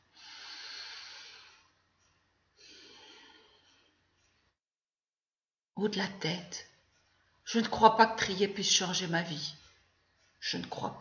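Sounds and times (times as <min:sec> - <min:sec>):
slow deep breath in and out: 0:00.0 - 0:01.9, 0:02.5 - 0:04.2
speech: 0:05.8 - 0:06.7, 0:07.5 - 0:09.6, 0:10.4 - 0:10.9.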